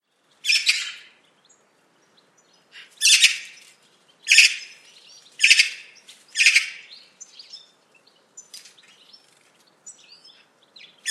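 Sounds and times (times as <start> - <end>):
bird giving harsh raspy chirping calls: 2.8 - 3.6, 4.3 - 4.8, 5.4 - 6.9.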